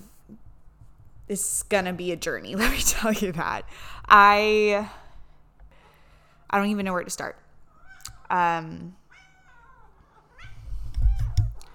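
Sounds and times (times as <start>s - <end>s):
speech: 1.3s - 5.0s, 6.5s - 7.4s, 8.3s - 9.0s
female cat meowing: 9.0s - 11.6s.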